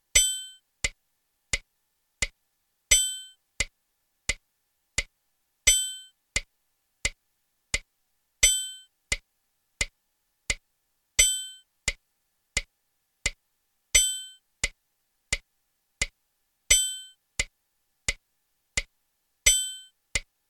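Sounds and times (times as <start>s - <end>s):
metronome ticking: 0.2s - 4.4s, 5.7s - 7.2s, 7.8s - 10.6s, 11.2s - 12.0s, 14.0s - 18.2s, 18.8s - 20.3s.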